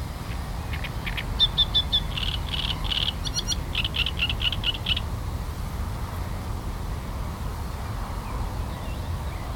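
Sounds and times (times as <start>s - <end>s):
steady low rumbling background noise: 0.0s - 9.5s
great reed warbler song of harsh grating syllables: 0.7s - 5.0s.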